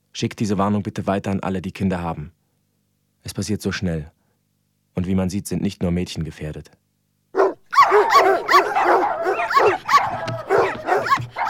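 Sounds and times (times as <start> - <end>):
speech: 0.2 - 2.4, 3.2 - 4.2, 5.0 - 6.8
several dogs barking and yelping: 7.4 - 11.4.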